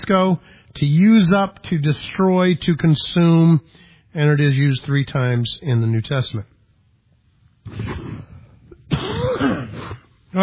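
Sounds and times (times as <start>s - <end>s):
speech: 0.1s - 6.5s, 7.7s - 8.0s
harsh coughing fit with a wheezy raspy edge: 7.6s - 10.2s.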